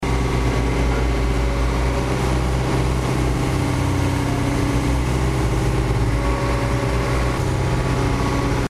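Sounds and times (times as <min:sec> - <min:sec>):
excavator: 0:00.0 - 0:08.6.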